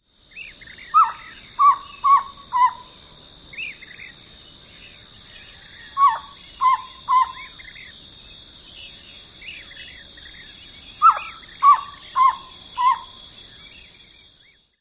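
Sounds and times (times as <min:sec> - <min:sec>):
Elf Owl call variant: 0:00.8 - 0:03.0, 0:05.5 - 0:07.9, 0:11.0 - 0:13.2.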